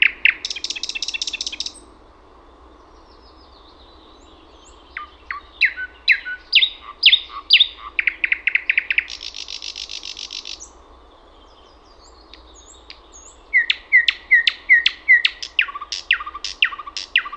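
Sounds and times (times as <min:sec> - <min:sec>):
Thrush nightingale song with buzzing rattles and clicking notes: 0:00.0 - 0:17.3
quiet hiss: 0:00.0 - 0:17.3.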